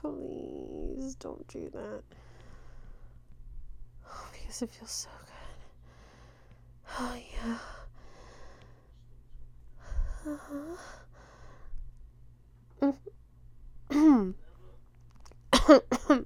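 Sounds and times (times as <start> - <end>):
low steady hum: 0.0 - 16.2
speech: 1.1 - 2.3, 4.5 - 5.2, 6.9 - 7.8, 10.2 - 11.0, 12.8 - 13.2, 14.2 - 14.4, 15.7 - 16.2
breathy vocal noises: 9.9 - 11.0
harsh coughing: 15.6 - 16.2.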